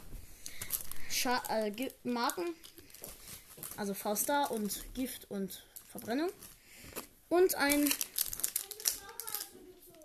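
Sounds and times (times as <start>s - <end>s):
plastic and paper packaging of trading card packs rustling: 0.4s - 5.2s, 5.8s - 10.0s
child talking faintly: 1.1s - 2.6s, 3.8s - 6.4s, 7.3s - 10.0s
speech: 1.2s - 3.1s, 3.8s - 6.5s, 7.3s - 8.1s.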